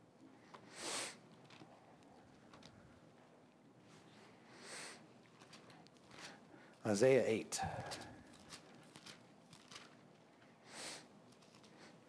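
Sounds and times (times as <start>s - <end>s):
breathy nose sniffle: 0.7s - 1.2s, 10.7s - 11.1s
speech: 6.9s - 8.1s.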